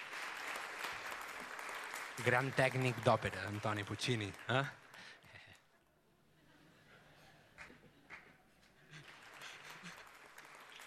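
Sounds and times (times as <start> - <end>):
live audience applauding a joke: 0.0 - 5.3, 7.6 - 10.8
speech: 2.2 - 4.8.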